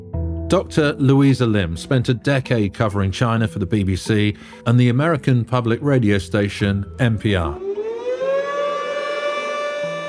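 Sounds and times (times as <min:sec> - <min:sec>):
speech: 0:00.5 - 0:07.6
air raid sirens wailing in Lushan China in earthquake memorial: 0:07.4 - 0:10.0.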